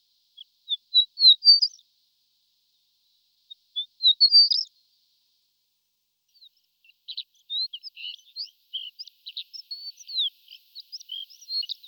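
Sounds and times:
horned lark Eremophila alpestris singing: 0.4 - 1.8, 3.5 - 4.7, 7.1 - 11.8.

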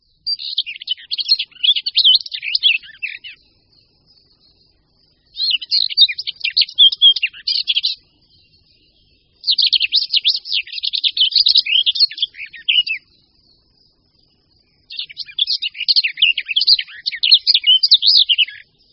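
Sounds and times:
garden warbler singing in long rich warbling phrases: 0.0 - 18.9.

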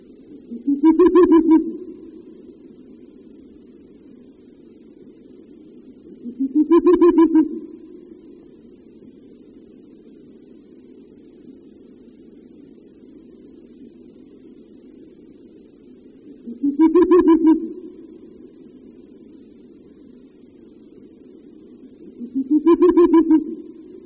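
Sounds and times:
male Ural owl hooting near its nest: 0.5 - 2.6, 6.1 - 8.5, 16.2 - 18.7, 22.0 - 24.0.

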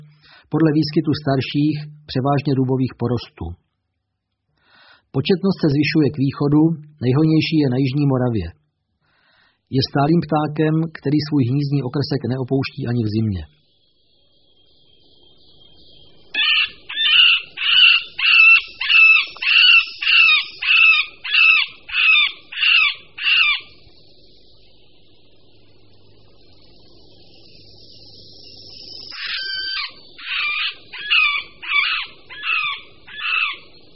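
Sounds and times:
speech: 0.5 - 3.6, 5.1 - 8.6, 9.7 - 13.6
male middle spotted woodpecker nasal mewing courtship calls: 15.9 - 24.0, 29.0 - 33.8.

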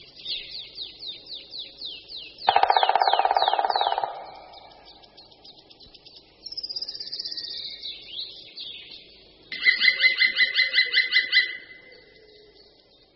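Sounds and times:
male black woodpecker courtship call: 2.3 - 5.7, 9.5 - 11.9.

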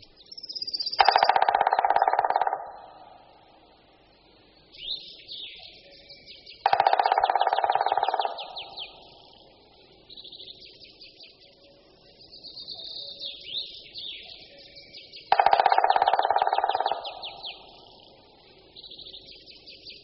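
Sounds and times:
small birds chirping and twittering: 0.0 - 20.0
black woodpecker drumming on tree: 1.0 - 3.2, 6.6 - 9.2, 15.2 - 18.0.

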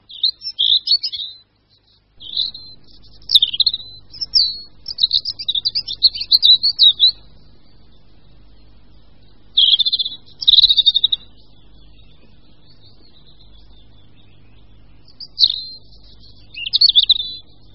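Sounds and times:
European robin singing: 0.0 - 17.7
faint low rumble: 0.0 - 17.7.

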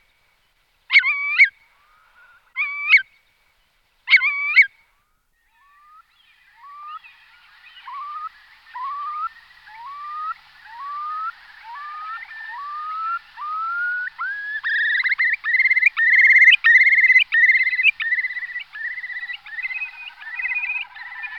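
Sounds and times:
Eurasian curlew Numenius arquata calling: 0.9 - 3.1, 4.1 - 4.7, 5.5 - 21.3.

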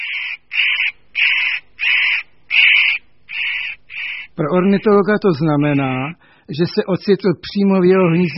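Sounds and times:
spotted nutcracker harsh rasping alarm calls at a forest clearing edge in the Bohemian-Moravian Highlands: 0.0 - 5.0, 8.0 - 8.3
speech: 4.4 - 8.3.

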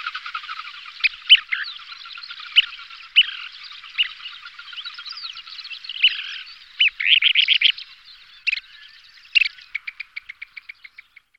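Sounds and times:
Kentish plover calling: 0.0 - 11.3.

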